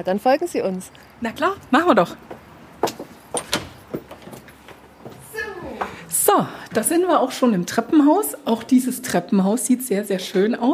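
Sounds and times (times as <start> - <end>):
speech: 0.0 - 2.4, 6.3 - 10.7
front door of a restored villa opening with clunks and handle rattling: 1.2 - 8.2.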